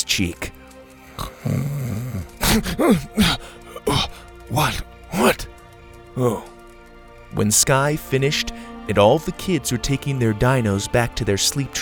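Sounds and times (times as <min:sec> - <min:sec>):
speech: 0:00.1 - 0:00.6, 0:01.2 - 0:01.9, 0:02.6 - 0:03.6, 0:04.5 - 0:05.5, 0:06.2 - 0:06.5, 0:07.3 - 0:11.8
voice imitating snoring with raspy breathy snorts: 0:01.1 - 0:05.4.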